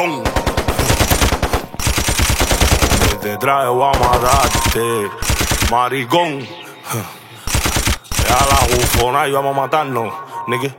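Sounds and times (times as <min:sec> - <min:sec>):
speech: 0:00.0 - 0:00.3, 0:03.3 - 0:07.2, 0:08.4 - 0:10.7
automatic gunfire from an AR-15 rifle with an extended magazine: 0:00.2 - 0:03.2, 0:04.0 - 0:05.8, 0:07.5 - 0:09.1.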